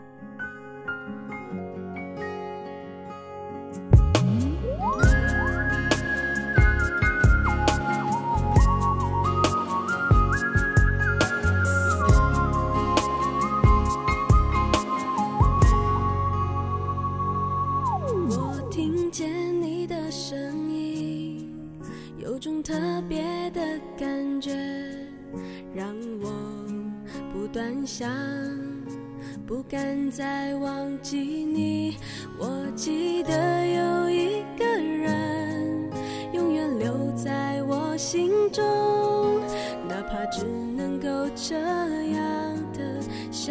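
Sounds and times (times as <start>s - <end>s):
pop song instrumental intro: 0.0s - 43.5s
steady drums and bass: 4.0s - 16.0s
bright whistle-like melody: 4.3s - 18.9s.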